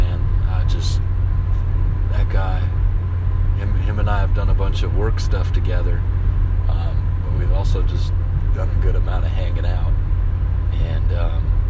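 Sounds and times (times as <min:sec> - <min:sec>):
engine and road noise inside a moving car: 0:00.0 - 0:11.6
speech: 0:04.4 - 0:06.2, 0:07.4 - 0:10.0, 0:10.8 - 0:11.5.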